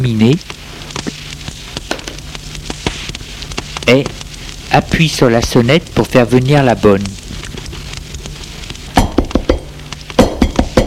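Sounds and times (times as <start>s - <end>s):
speech: 0.0s - 0.6s, 3.9s - 7.2s
knocking on a door: 9.0s - 10.8s.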